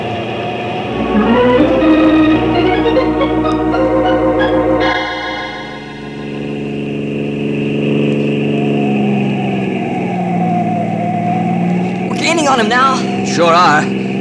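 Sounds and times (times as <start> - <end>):
car engine roaring at speed during a chase: 0.0 - 14.2
speech: 13.4 - 14.0.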